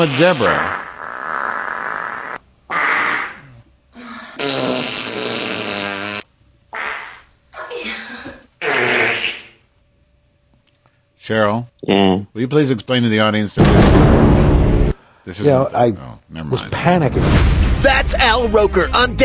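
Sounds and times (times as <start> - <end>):
speech: 0.0 - 0.8, 11.3 - 14.4, 15.2 - 19.2
fart noises: 0.0 - 3.7, 4.4 - 7.3, 8.6 - 9.6.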